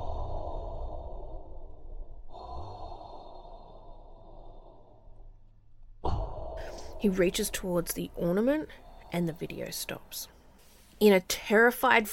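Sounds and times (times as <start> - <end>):
slow steady breathing: 0.0 - 5.5, 6.1 - 7.0, 8.5 - 9.7
speech: 7.0 - 10.4, 11.0 - 12.1.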